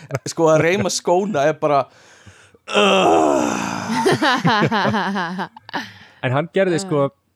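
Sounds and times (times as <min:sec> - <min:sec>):
speech: 0:00.1 - 0:07.3
person imitating a long exasperated groaning sigh: 0:02.7 - 0:04.1
laughter: 0:03.8 - 0:05.9.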